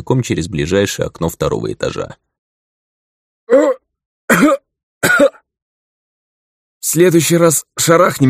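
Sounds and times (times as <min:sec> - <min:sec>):
speech: 0:00.0 - 0:02.3, 0:06.8 - 0:08.2
harsh throaty coughs after inhaling dust: 0:03.5 - 0:05.5.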